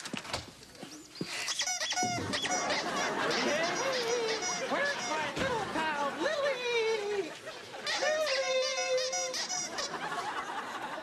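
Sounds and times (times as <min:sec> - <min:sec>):
door swinging open on a squeaky hinge: 0:01.7 - 0:02.7
laughter: 0:02.1 - 0:11.0.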